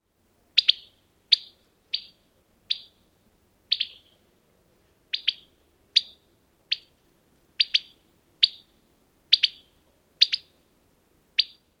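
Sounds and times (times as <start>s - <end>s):
female Carolina wren alarm call: 0.6s - 3.1s, 3.7s - 4.2s, 5.1s - 7.0s, 7.6s - 10.6s, 11.4s - 11.7s.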